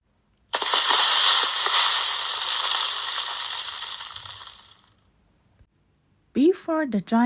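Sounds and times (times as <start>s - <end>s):
debris rattling and crunching: 0.6s - 4.9s
speech: 6.7s - 7.2s.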